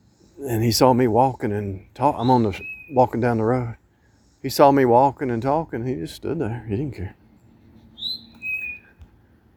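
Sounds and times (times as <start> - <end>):
bird chirping high-pitched whistled notes outdoors: 0.1 - 4.4, 7.3 - 9.0
speech: 0.4 - 3.8, 4.4 - 7.2.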